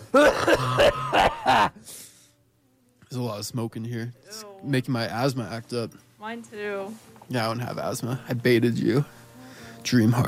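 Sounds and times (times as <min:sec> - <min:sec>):
person imitating a smoker's cough: 0:00.0 - 0:01.7
speech: 0:00.1 - 0:01.0, 0:03.4 - 0:09.2, 0:09.8 - 0:10.2
faint breath: 0:01.8 - 0:02.5, 0:09.1 - 0:09.8.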